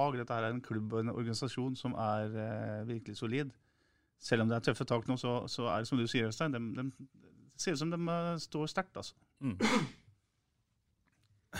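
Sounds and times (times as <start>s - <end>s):
speech: 0.0s - 10.0s
person sneezing: 9.4s - 10.1s.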